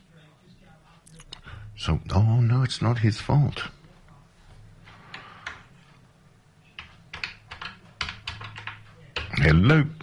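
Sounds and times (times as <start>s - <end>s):
low steady hum: 0.0s - 10.0s
speech: 1.8s - 3.8s, 9.4s - 10.0s
keyboard typing: 5.1s - 5.7s, 6.8s - 9.6s.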